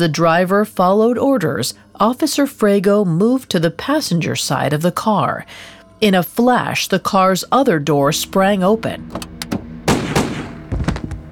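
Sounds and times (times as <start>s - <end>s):
speech: 0.0s - 9.4s
.357 Magnum revolver gunshots: 9.8s - 11.1s.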